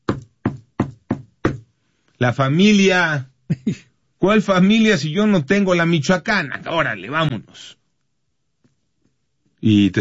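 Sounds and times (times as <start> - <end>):
knocking on a wooden house door: 0.0 - 1.7
speech: 2.2 - 7.8, 9.6 - 10.0.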